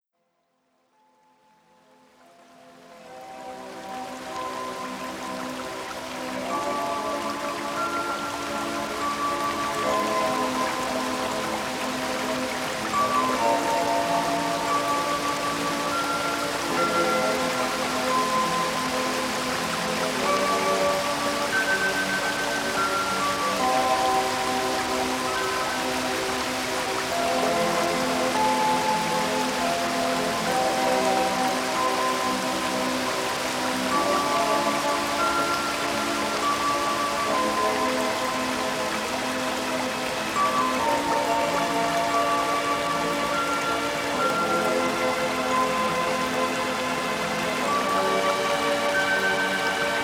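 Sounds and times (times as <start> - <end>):
mountain stream: 0.9 - 50.0.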